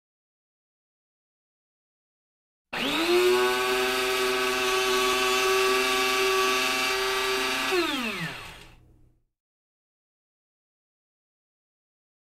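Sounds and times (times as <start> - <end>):
coffee grinding: 2.8 - 8.8.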